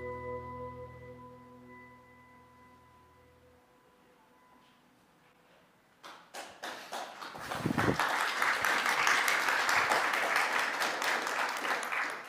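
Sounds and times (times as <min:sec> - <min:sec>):
audience clapping: 0:06.0 - 0:12.2.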